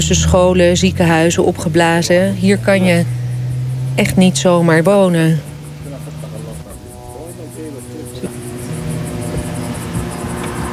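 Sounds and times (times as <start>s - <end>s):
speech: 0.0s - 3.2s, 4.0s - 5.5s
drone flying overhead buzzing: 0.0s - 10.7s.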